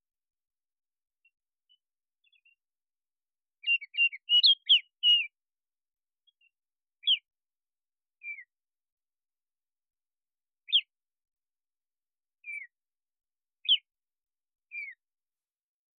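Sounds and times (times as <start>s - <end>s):
Baltimore oriole whistling flute-like notes: 3.6s - 5.3s.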